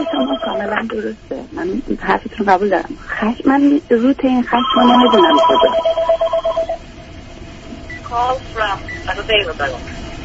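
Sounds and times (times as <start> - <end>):
telephone ringing in warbling pulse of repeated tones: 0.0 - 1.0, 4.5 - 6.8
faint hum: 0.0 - 10.2
speech: 0.1 - 6.1, 8.1 - 10.0.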